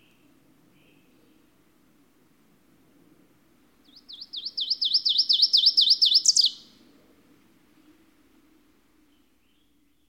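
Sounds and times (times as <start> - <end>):
bird singing high sweet repeated notes: 3.9 - 6.7.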